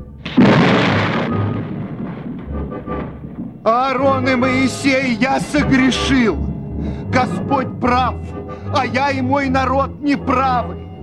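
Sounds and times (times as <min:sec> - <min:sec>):
thunder crack and rolling rumble: 0:00.0 - 0:09.3
hiss of falling rain and hail: 0:00.2 - 0:07.2
speech: 0:03.6 - 0:06.4, 0:07.2 - 0:10.8.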